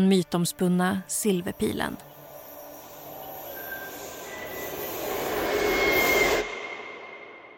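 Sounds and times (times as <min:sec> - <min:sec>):
speech: 0:00.0 - 0:02.1
thin high squeals of a subway train: 0:02.1 - 0:07.5
subway train rumbling along the tracks: 0:02.2 - 0:07.5.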